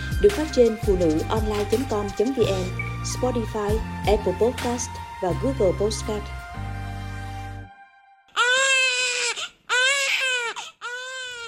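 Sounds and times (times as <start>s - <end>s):
speech: 0.2s - 6.4s
newborn baby crying: 8.3s - 11.4s.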